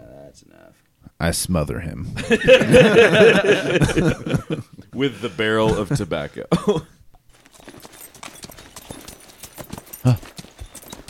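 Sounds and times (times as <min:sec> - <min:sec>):
speech: 0:00.4 - 0:06.9
laughter: 0:02.2 - 0:06.8
several horses galloping: 0:07.3 - 0:11.0.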